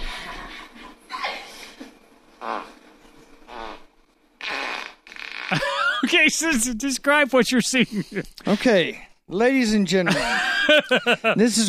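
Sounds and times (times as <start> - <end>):
loud sputtering fart noises from a played video: 2.4 - 5.8
speech: 5.5 - 11.6
laughter: 7.6 - 8.4, 10.1 - 11.5.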